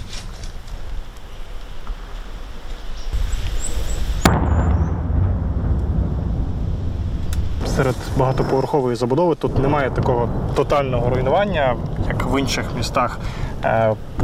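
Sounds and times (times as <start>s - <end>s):
low rumble of wind-like noise: 0.0s - 14.2s
shelling explosion: 4.0s - 14.2s
speech: 7.8s - 14.2s.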